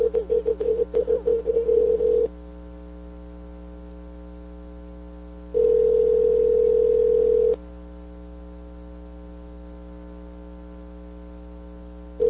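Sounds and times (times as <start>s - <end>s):
choppy phone dialing tones: 0.0s - 2.3s, 5.6s - 7.6s
faint electrical hum: 0.0s - 12.2s.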